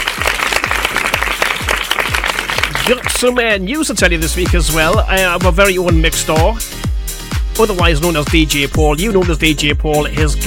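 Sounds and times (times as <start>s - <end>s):
round of applause: 0.0s - 3.3s
speech: 2.9s - 6.9s, 7.6s - 10.4s.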